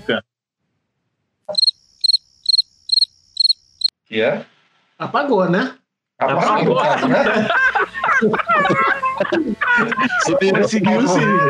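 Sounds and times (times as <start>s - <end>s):
speech: 0.1s - 0.3s, 1.5s - 1.7s, 4.1s - 11.4s
laughter: 6.2s - 11.4s
chickens squawking frantically: 7.3s - 11.4s.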